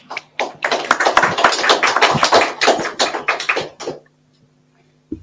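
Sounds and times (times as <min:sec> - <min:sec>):
crowd applauding: 0:00.0 - 0:04.1.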